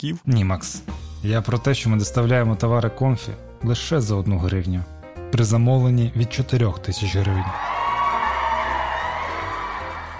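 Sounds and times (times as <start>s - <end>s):
speech: 0.0s - 7.8s
crowd cheering and shouting joyfully: 6.9s - 10.1s.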